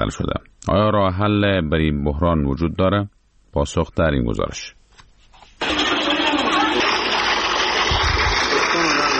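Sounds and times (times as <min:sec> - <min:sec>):
speech: 0:00.0 - 0:04.8
water gushing from a hand water pump in Jalalabad, Afghanistan: 0:05.6 - 0:09.1.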